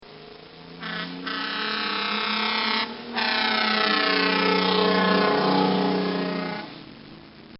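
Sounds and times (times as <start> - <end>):
fire truck driving by: 0.8 - 6.8.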